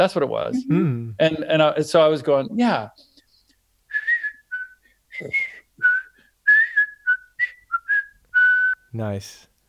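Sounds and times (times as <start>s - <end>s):
speech: 0.0s - 3.1s, 5.2s - 5.5s, 8.9s - 9.5s
person whistling a short melody: 3.9s - 8.9s.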